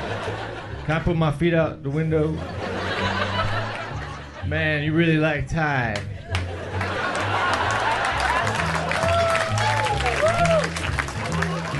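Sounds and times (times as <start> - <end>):
laughter: 0.0 - 1.1, 1.9 - 4.6, 6.1 - 11.7
speech: 0.9 - 2.6, 4.4 - 6.2
audience applauding and cheering: 6.0 - 11.7.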